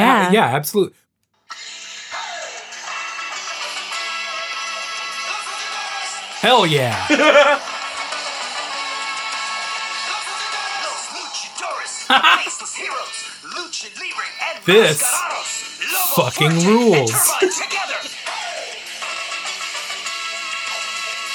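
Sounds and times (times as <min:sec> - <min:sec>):
loud energetic kids' TV theme song with sung vocals: 0:00.0 - 0:00.8, 0:06.4 - 0:07.6, 0:12.0 - 0:12.5, 0:14.4 - 0:15.2, 0:15.8 - 0:17.6
speech: 0:00.3 - 0:01.7, 0:06.4 - 0:07.7, 0:12.1 - 0:18.2
person exclaiming: 0:06.4 - 0:07.4, 0:14.4 - 0:15.2, 0:15.9 - 0:17.6
person laughing: 0:06.4 - 0:07.6, 0:12.1 - 0:12.5, 0:14.5 - 0:15.2, 0:15.9 - 0:17.6.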